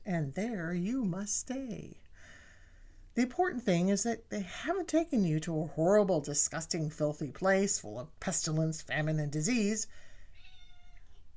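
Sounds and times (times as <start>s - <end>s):
speech: 0.1s - 2.0s, 3.2s - 10.1s
cat meowing: 10.3s - 11.3s.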